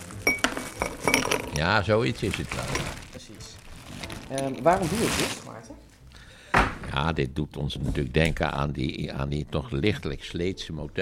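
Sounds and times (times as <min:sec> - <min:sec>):
ice cubes dropping into a glass: 0:00.2 - 0:01.7
speech: 0:01.6 - 0:03.5, 0:04.3 - 0:05.9, 0:06.9 - 0:11.0.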